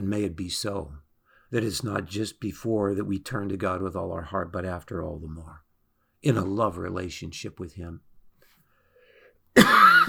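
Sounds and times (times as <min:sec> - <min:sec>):
speech: 0:00.0 - 0:05.6, 0:06.2 - 0:08.1, 0:09.6 - 0:10.0
person coughing: 0:09.6 - 0:10.0.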